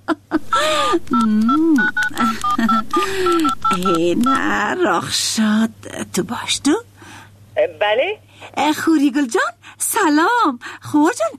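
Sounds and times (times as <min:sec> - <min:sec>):
speech: 0:00.6 - 0:06.9, 0:07.6 - 0:11.3
telephone keypad beeps as a call is dialed: 0:01.1 - 0:04.7.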